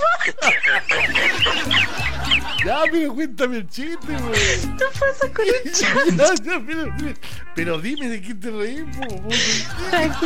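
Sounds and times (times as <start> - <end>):
chick cheeping: 0.0 - 3.0
laughter: 0.0 - 7.2, 9.0 - 10.2
speech: 2.6 - 10.2.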